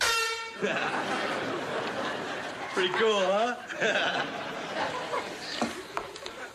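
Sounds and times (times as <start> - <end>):
handheld air horn blast: 0.0 - 0.7
laughter: 0.5 - 6.5
speech: 0.6 - 1.6, 2.8 - 5.1.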